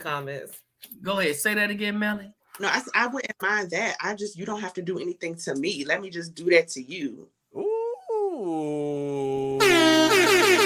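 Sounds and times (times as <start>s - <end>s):
speech: 0.0s - 7.7s, 8.4s - 10.1s
air horn sound effect blaring: 9.6s - 10.6s.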